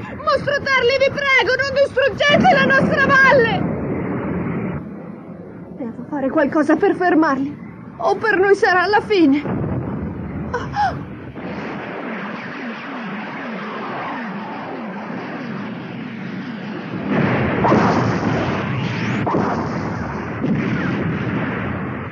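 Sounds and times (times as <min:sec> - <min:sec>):
gunfire and artillery shots in an animated film battle barrage: 0:00.0 - 0:22.1
speech: 0:00.4 - 0:03.7, 0:05.8 - 0:09.6
sharp cracks: 0:09.4 - 0:22.1.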